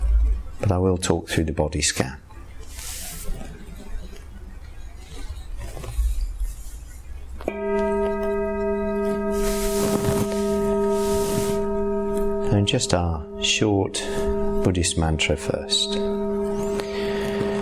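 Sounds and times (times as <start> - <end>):
speech: 0.6 - 2.3, 12.7 - 16.1
soft rustling: 4.7 - 12.4
meditation bell struck during a sitting meditation: 7.5 - 17.5.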